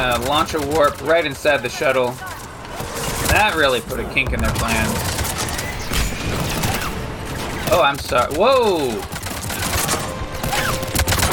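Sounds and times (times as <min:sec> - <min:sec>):
speech: 0:00.0 - 0:02.3, 0:03.3 - 0:05.1, 0:07.7 - 0:09.1
heavy gun turret firing in a video game: 0:00.0 - 0:11.3.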